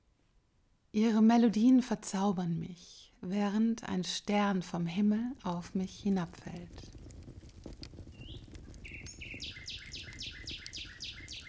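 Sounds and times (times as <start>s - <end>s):
speech: 1.0s - 7.0s
nightingale singing: 8.1s - 11.4s.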